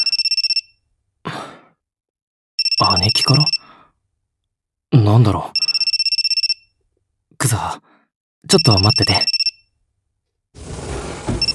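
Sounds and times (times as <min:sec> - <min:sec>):
phone ringtone electronic trill of high beeps: 0:00.0 - 0:00.6, 0:02.6 - 0:03.6, 0:05.6 - 0:06.7, 0:08.5 - 0:09.6
soft breathy sigh: 0:01.3 - 0:01.8
speech: 0:02.8 - 0:03.6, 0:04.9 - 0:05.6, 0:07.4 - 0:07.8, 0:08.5 - 0:09.4.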